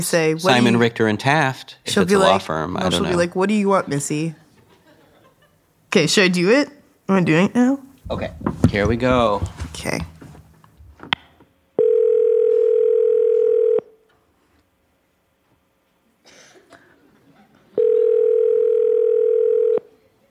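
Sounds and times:
speech: 0.0 - 4.4, 5.9 - 10.1
laughter: 3.8 - 5.7, 16.8 - 18.1
phone call ringback tones: 11.8 - 13.9, 17.8 - 19.9.

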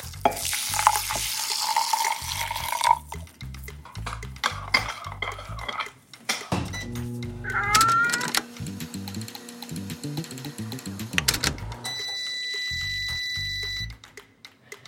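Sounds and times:
soft music: 0.0 - 14.8
half cup of water poured into a bowl of steel cut oats: 0.3 - 3.2
dishware clinking: 4.4 - 6.6.

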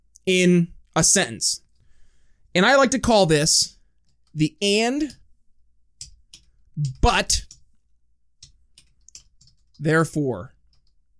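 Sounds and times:
speech: 0.3 - 1.6, 2.6 - 3.8, 4.4 - 5.2, 6.8 - 7.5, 9.8 - 10.5
quiet computer keyboard typing: 4.0 - 5.2, 6.0 - 7.6, 8.4 - 9.9, 10.6 - 11.1.

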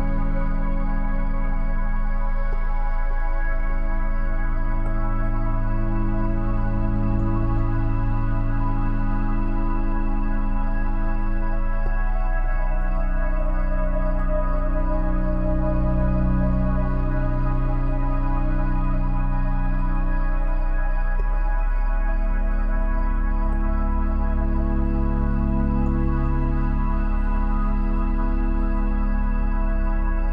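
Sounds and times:
soft sustained melodies with long layered tones: 0.0 - 30.3.

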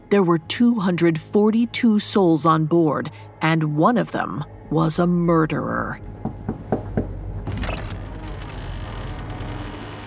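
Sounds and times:
speech: 0.1 - 6.1
wooden cabin door creaking open: 6.6 - 10.0.

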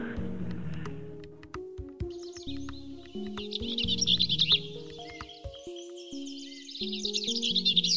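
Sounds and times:
soft steady music: 0.0 - 7.9
Bell's vireo singing rapid jumbled chattering phrases: 2.0 - 7.9.

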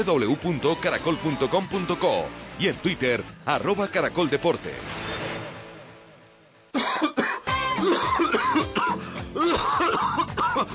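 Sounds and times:
speech: 0.0 - 5.4
smoker coughing hard with rough raspy fit: 6.7 - 10.7.

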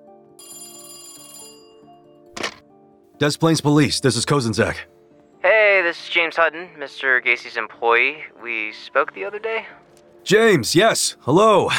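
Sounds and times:
telephone bell ringing: 0.2 - 2.2
speech: 3.2 - 4.9, 5.9 - 11.7.

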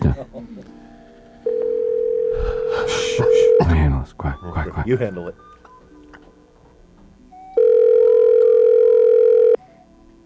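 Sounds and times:
telephone ringback tone on an outgoing call: 1.4 - 3.7, 7.6 - 9.6
speech: 4.8 - 5.5.

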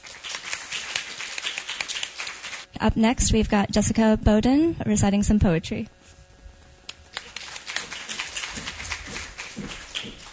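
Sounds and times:
audience applause: 0.0 - 2.6, 7.2 - 10.3
speech: 2.8 - 6.0.

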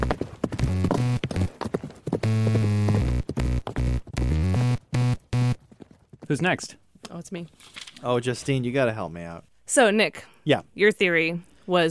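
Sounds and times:
droning buzzy tone: 0.0 - 1.5, 2.2 - 5.6
horse hooves clip-clopping: 0.0 - 4.6, 5.2 - 6.7
speech: 6.3 - 11.8.

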